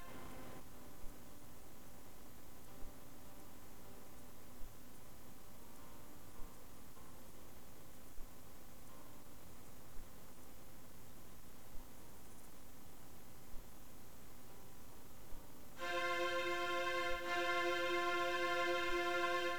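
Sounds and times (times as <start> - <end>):
strings playing: 0.0 - 0.6, 15.8 - 19.5.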